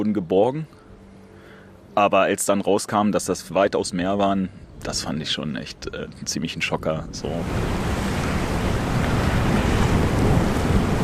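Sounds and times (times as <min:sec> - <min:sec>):
speech: 0:00.0 - 0:00.8, 0:02.0 - 0:08.1
faint wind: 0:00.0 - 0:11.0
ocean surf rolling toward the shore of a small island: 0:07.1 - 0:11.0.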